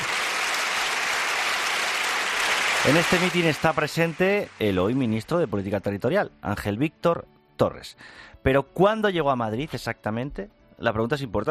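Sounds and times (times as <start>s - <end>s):
crowd applause at a Spanish Socialist party rally in Fuenlabrada, Madrid: 0.0s - 5.3s
speech: 2.8s - 11.4s.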